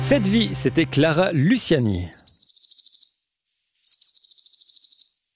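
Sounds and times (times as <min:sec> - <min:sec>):
speech: 0:00.1 - 0:02.2
blue tit song: 0:02.1 - 0:05.3.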